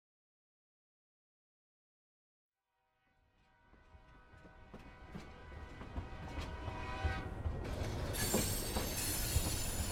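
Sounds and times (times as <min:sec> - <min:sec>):
train rumbling: 0:03.3 - 0:09.8
train wheels squealing: 0:06.2 - 0:09.8.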